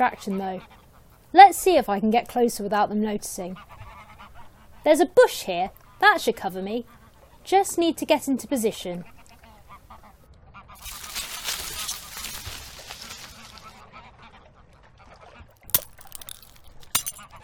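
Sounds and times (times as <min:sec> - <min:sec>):
speech: 0:00.0 - 0:03.8, 0:04.8 - 0:09.1
rustling and scraping noise: 0:10.8 - 0:13.8
small glass watch face cracking: 0:15.6 - 0:17.4.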